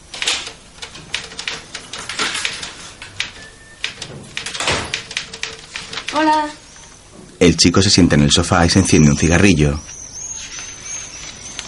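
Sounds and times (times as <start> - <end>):
typewriter typing in an apartment: 0.1 - 6.5
speech: 6.2 - 6.6, 7.4 - 10.0.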